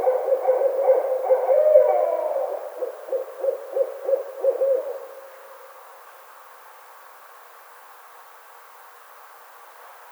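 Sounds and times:
barred owl hooting: 0.0s - 5.4s.

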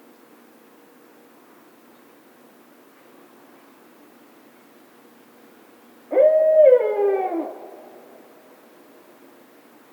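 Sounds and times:
Barred Owl hooting: 6.1s - 8.4s.

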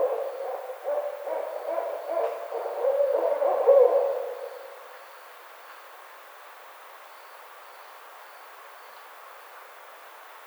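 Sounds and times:
barred owl hooting: 0.0s - 4.7s.

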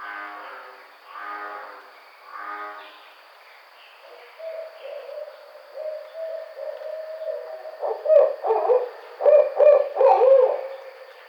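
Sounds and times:
faint hum: 0.0s - 11.2s
barred owl hooting: 4.4s - 10.8s.

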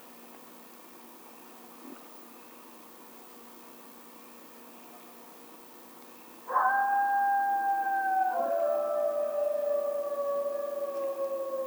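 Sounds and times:
coyote howl: 6.5s - 11.6s.

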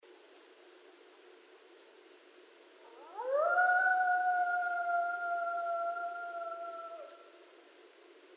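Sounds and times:
several coyotes howling at night: 2.8s - 7.2s.

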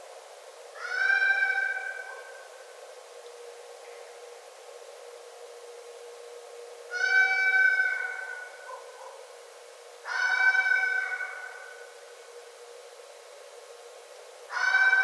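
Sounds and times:
steady faint background hiss: 0.0s - 15.0s
red fox giving a harsh wailing scream: 0.8s - 2.4s, 6.9s - 8.8s, 10.0s - 11.8s, 14.5s - 15.0s.

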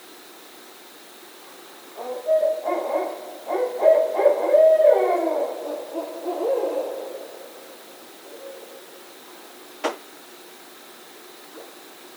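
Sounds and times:
barred owl giving deep wavering hoots with harsh cackling notes: 1.9s - 9.0s.

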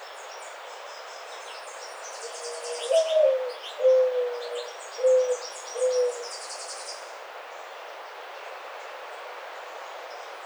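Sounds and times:
mourning dove cooing song: 2.6s - 6.2s.

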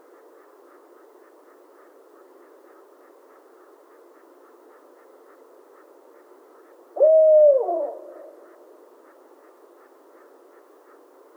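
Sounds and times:
quiet background hiss: 0.0s - 11.3s
barred owl hooting: 7.0s - 8.7s.

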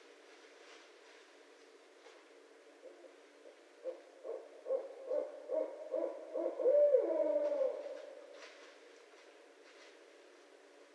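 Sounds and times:
barred owl hooting: 2.8s - 8.3s.

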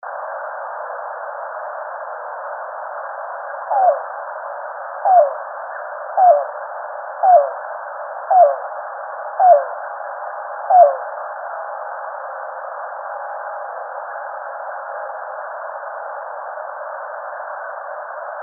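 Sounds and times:
Yellow-billed Cuckoo calling: 3.7s - 4.0s, 5.0s - 5.4s, 6.2s - 6.5s, 7.2s - 7.6s, 8.3s - 8.6s, 9.4s - 9.7s, 10.7s - 11.0s.

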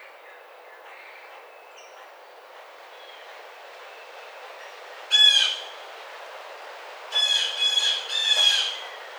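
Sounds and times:
blue jay calls: 5.0s - 5.9s, 7.1s - 9.1s.

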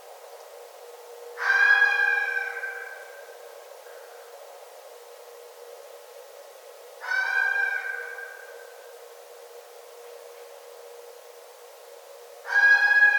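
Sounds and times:
red fox drawn-out harmonic cry: 1.4s - 3.1s, 7.0s - 8.4s, 12.5s - 13.1s.

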